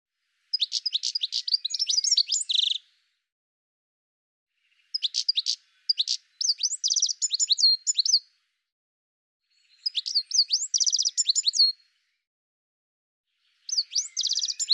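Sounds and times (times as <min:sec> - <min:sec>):
bird singing high sharp chirps and slurred notes: 0:00.5 - 0:02.9, 0:04.6 - 0:08.3, 0:09.5 - 0:11.9, 0:13.4 - 0:14.7.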